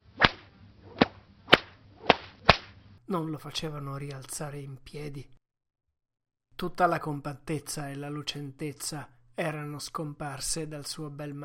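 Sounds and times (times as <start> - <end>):
whip cracks driving a sled dog team: 0.2 - 2.8
speech: 3.1 - 5.4, 6.6 - 11.4.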